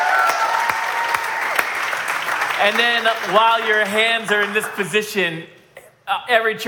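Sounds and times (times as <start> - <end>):
room full of people applauding: 0.0 - 5.0
speech: 2.6 - 6.6.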